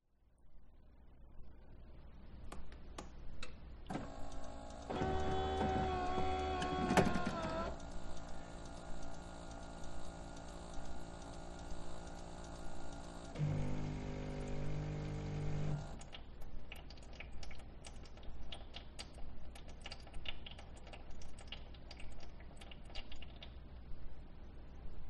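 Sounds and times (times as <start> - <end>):
coffee machine self-cleaning: 3.9 - 16.0.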